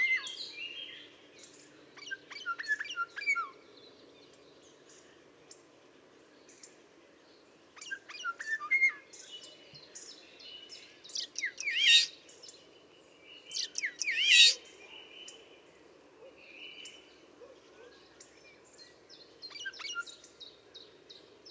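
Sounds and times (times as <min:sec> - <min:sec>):
background hiss: 0:00.0 - 0:21.5
common starling calls: 0:11.1 - 0:12.1, 0:13.5 - 0:14.6.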